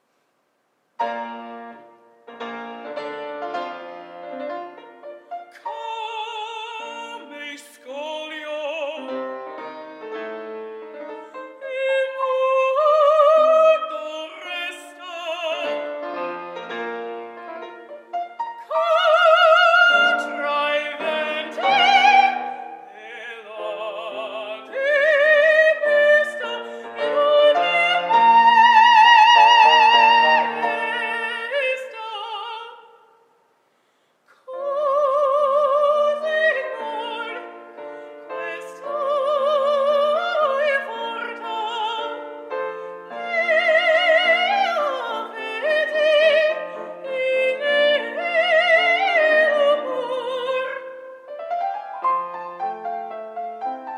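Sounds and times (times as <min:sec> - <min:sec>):
woman singing Italian opera: 0:05.5 - 0:09.5, 0:11.3 - 0:16.0, 0:18.6 - 0:33.0, 0:34.3 - 0:51.2.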